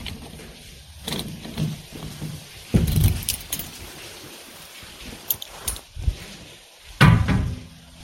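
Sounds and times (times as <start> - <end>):
steady wind-like noise: 0.0 - 8.0
keys jingling and rattling: 2.8 - 4.0, 5.1 - 5.9
key turning in a lock: 2.9 - 3.8.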